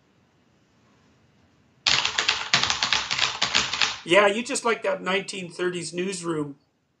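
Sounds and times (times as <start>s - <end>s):
rapid typing on a mechanical keyboard: 1.9s - 4.1s
speech: 4.0s - 6.6s.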